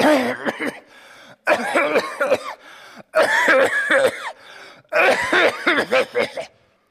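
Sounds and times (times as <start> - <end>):
person imitating heavy hacking smoker's morning cough: 0.0 - 0.9, 1.5 - 2.6, 3.2 - 4.4, 5.0 - 6.6.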